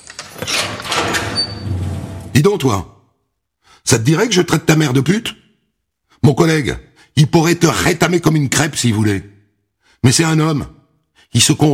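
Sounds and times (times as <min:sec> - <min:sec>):
heavy prison cell door sliding open: 0:00.0 - 0:02.4
speech: 0:02.4 - 0:03.0, 0:03.8 - 0:05.4, 0:06.2 - 0:09.3, 0:10.0 - 0:11.7.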